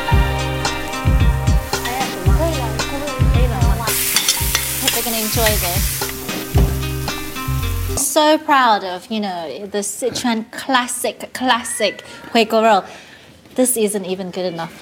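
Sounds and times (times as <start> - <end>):
spring onions and sugar with soy sauce sizzling in a wok: 0.0 - 8.1
stirring scrapes and clanks in a wok: 4.1 - 6.5
speech: 8.2 - 13.0, 13.6 - 14.7.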